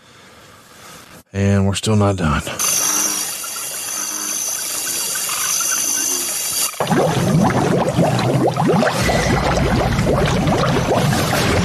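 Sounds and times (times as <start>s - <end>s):
speech: 1.3s - 3.0s
water hissing: 2.6s - 11.6s.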